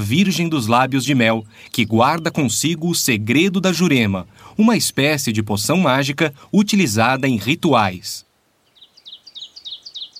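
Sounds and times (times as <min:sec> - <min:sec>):
small bird chirping in a forest: 0:00.0 - 0:03.5, 0:08.6 - 0:10.1
speech: 0:00.0 - 0:08.3.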